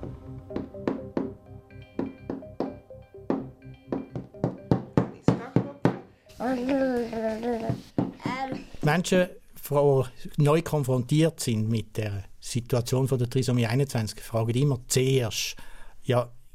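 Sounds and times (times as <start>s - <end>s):
little girl knocking with play dough: 2.0s - 6.8s, 7.6s - 8.7s
speech: 6.4s - 16.4s.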